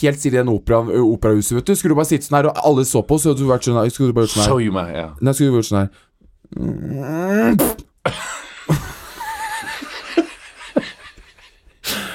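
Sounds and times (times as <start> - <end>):
speech: 0.0 - 8.8
person imitating a fart with lips: 6.5 - 8.0
laughter: 8.1 - 12.1.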